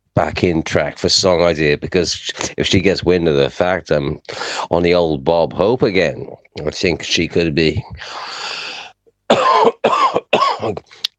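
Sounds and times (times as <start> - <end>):
speech: 0.2 - 8.4
harsh coughing from a person with a cough: 9.3 - 10.9.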